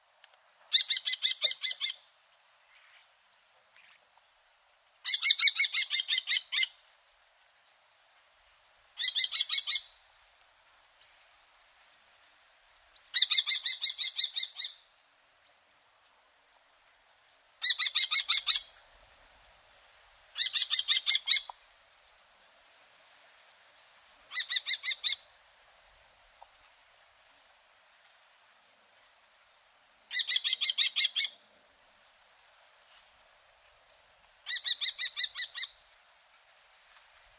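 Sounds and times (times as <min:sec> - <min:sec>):
Falco tinnunculus tinnunculus calling: 0:00.7 - 0:02.0, 0:05.0 - 0:06.8, 0:09.0 - 0:10.0, 0:13.0 - 0:14.8, 0:17.6 - 0:18.8, 0:20.4 - 0:21.6, 0:24.3 - 0:25.3, 0:30.1 - 0:31.4, 0:34.4 - 0:35.8.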